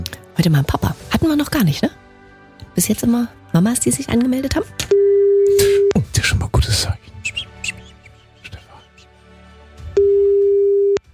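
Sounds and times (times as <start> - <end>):
speech: 0.4 - 2.0, 2.8 - 5.0
telephone tone of a call being placed: 4.9 - 6.0, 10.0 - 11.0.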